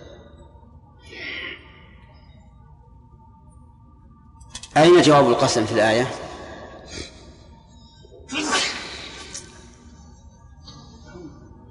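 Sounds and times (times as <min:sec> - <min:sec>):
speech: 0:04.8 - 0:06.2
person sneezing: 0:08.3 - 0:09.2.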